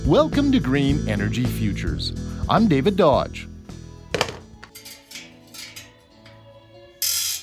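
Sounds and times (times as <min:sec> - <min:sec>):
speech: 0:00.1 - 0:03.5
metallic rattling: 0:04.2 - 0:07.4
mechanics turning wrenches in a bike shop: 0:04.7 - 0:06.4, 0:07.0 - 0:07.4.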